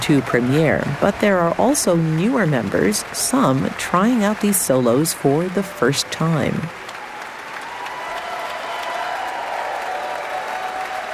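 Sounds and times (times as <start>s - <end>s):
large concert audience applauding after a concerto: 0.0s - 11.1s
speech: 0.1s - 6.8s
concert audience whistle or cheer: 6.9s - 11.1s.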